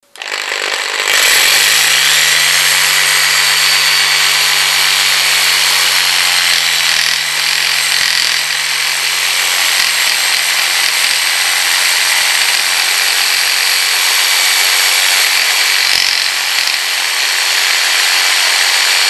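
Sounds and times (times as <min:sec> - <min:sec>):
jigsaw cutting: 0:00.0 - 0:19.0.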